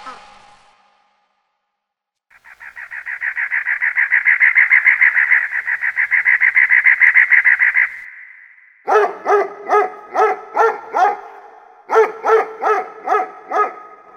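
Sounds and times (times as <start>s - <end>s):
rapid high chirping pulses: 2.3s - 8.9s
dog barking: 8.9s - 14.1s.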